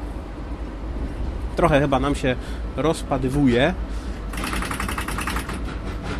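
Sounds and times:
low rumble of the running electric train coasting without power: 0:00.0 - 0:06.1
speech: 0:01.6 - 0:04.5
electric train contactors switching to close the circuit: 0:03.2 - 0:06.1.

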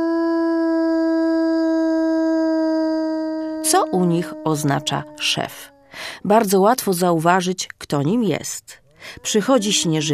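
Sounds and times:
wild wolves howling on the snowy plains of Alaska or Canada: 0:00.0 - 0:07.0
speech: 0:03.7 - 0:10.1.

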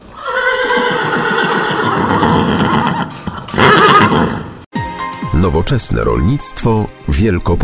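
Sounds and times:
horse neighing: 0:00.0 - 0:04.6
speech: 0:05.4 - 0:07.6.

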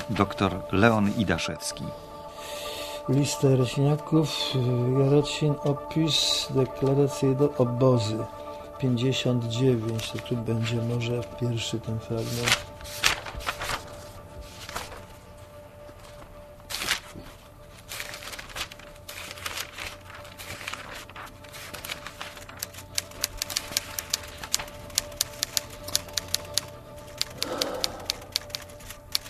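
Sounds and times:
speech: 0:00.1 - 0:13.1
paper pages of a transcribed memoir rustling and flipping: 0:09.3 - 0:29.2.

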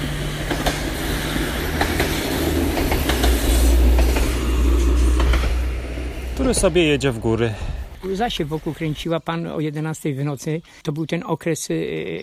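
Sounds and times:
train wheels clickety-clack: 0:00.0 - 0:06.9
train rumbling past on the tracks: 0:00.0 - 0:09.2
speech: 0:06.5 - 0:12.2.

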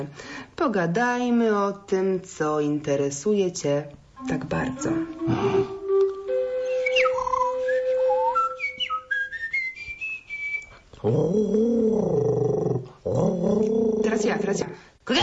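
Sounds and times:
speech: 0:00.0 - 0:05.8, 0:11.0 - 0:15.2
whistled imitation of tit birdsong: 0:06.3 - 0:10.8.

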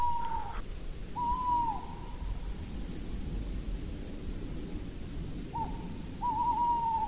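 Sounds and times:
male tawny owl hooting: 0:00.0 - 0:00.6, 0:01.2 - 0:02.3, 0:05.5 - 0:07.0
steady hiss of noise: 0:00.0 - 0:07.0.

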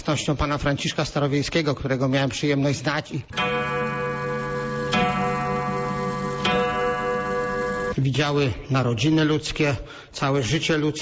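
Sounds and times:
speech: 0:00.1 - 0:03.8, 0:08.0 - 0:11.0
antique 18th-century clock ticking: 0:03.3 - 0:08.0.

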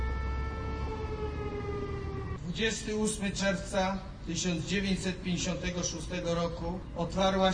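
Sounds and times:
rail vehicle factory siren wailing at a commemoration ceremony: 0:00.0 - 0:02.4
speech: 0:02.6 - 0:07.5.

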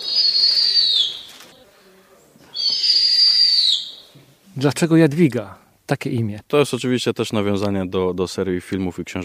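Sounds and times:
hand-reared young owl giving hissing high-pitched screeches: 0:00.0 - 0:01.5, 0:02.5 - 0:04.2
speech: 0:04.6 - 0:09.2.

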